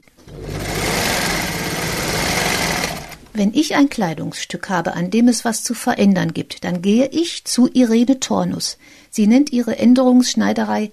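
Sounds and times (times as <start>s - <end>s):
sewing machine running in an alterations tailoring shop: 0.2s - 3.3s
speech: 3.4s - 10.9s.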